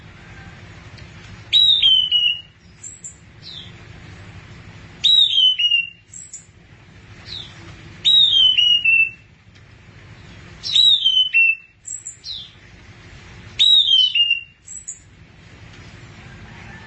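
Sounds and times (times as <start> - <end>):
low steady hum: 0.0 - 16.8
thrush whistled song: 1.5 - 3.8, 5.0 - 6.5, 7.2 - 9.3, 10.6 - 12.6, 13.6 - 15.1.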